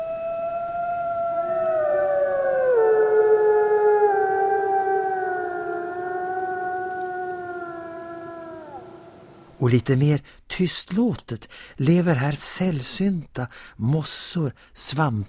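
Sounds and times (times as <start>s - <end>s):
wolves howling in old-growth forest of Tiveden: 0.0s - 9.5s
speech: 9.6s - 15.2s.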